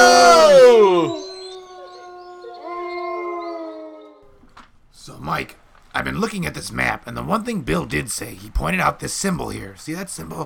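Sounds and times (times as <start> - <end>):
pack of wolves howling: 0.0 - 4.3
speech: 5.3 - 10.4.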